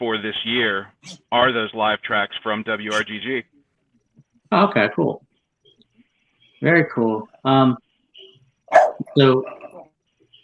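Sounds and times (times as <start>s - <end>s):
speech: 0.0s - 3.5s, 4.5s - 5.2s, 6.6s - 7.8s, 8.7s - 9.6s
dog barking: 8.7s - 9.8s.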